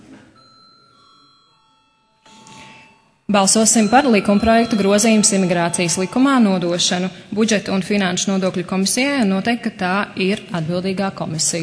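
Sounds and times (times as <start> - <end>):
parliament chamber bell ringing before a vote: 0.4 - 8.1
speech: 3.3 - 11.6.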